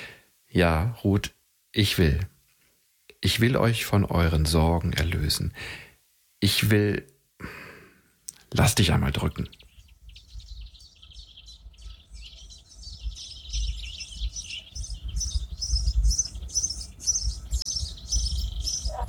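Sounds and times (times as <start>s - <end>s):
speech: 0.5s - 2.4s, 3.2s - 7.6s, 8.5s - 9.6s
birds chirping at dawn: 4.0s - 5.4s, 8.1s - 19.0s.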